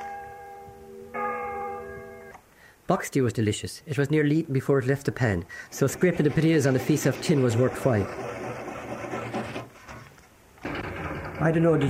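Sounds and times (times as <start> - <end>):
large old church bell ringing: 0.0 - 2.3
speech: 2.9 - 8.4, 11.4 - 11.8.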